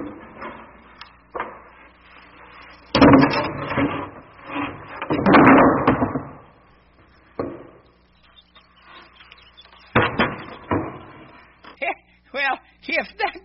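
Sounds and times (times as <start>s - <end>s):
heavy wooden boards scraping on front steps: 0.0s - 11.8s
hollow thumps of heavy wooden boards on front steps: 0.0s - 11.8s
heavy wooden boards knocking on front steps: 2.9s - 6.5s, 7.4s - 7.8s, 9.8s - 11.4s.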